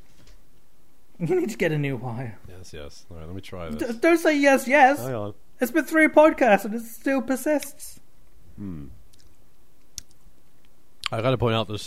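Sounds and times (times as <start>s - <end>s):
speech: 1.2s - 8.0s, 8.6s - 9.0s, 11.1s - 11.8s
person chewing a cheeseburger: 8.6s - 10.2s.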